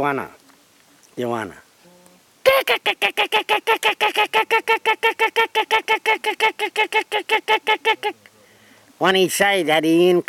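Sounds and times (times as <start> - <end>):
speech: 0.0 - 0.4, 1.2 - 1.6, 2.7 - 8.2, 9.0 - 10.2
sea eagle calling with harsh honking notes: 1.8 - 8.6.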